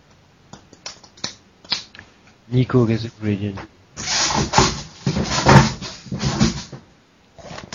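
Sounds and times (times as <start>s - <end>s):
speech: 2.5s - 3.8s, 4.4s - 4.7s
wooden chair scraping and dragging across the floor: 4.0s - 6.8s.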